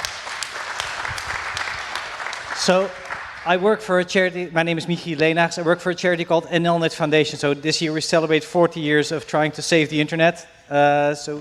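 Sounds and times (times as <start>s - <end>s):
audience applauding a speaker: 0.0s - 3.6s
speech: 2.6s - 11.3s.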